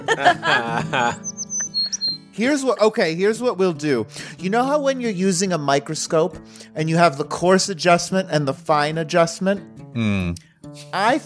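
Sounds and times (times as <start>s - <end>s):
laughter: 0.0s - 1.2s
speech: 0.1s - 1.3s, 2.4s - 11.2s
thin high-pitched chirps and whistles: 1.1s - 2.4s
person imitating bird squawks: 10.0s - 10.4s.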